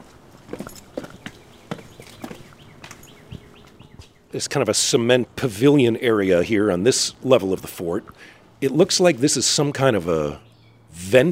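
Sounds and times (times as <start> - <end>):
footsteps going down stairs at an old fort: 0.0 - 4.2
speech: 4.3 - 11.3.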